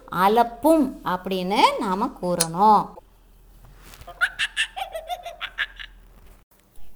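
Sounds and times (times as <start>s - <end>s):
speech: 0.2s - 3.0s
monkey chattering: 4.1s - 5.9s.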